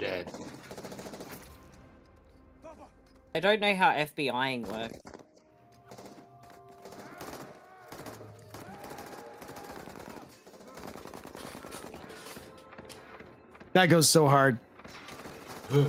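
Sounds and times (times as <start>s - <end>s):
rapid gunfire bursts in a shootout: 0.0s - 1.6s, 5.9s - 6.2s, 6.8s - 13.2s, 14.8s - 15.8s
speech: 3.4s - 5.1s, 13.8s - 14.7s.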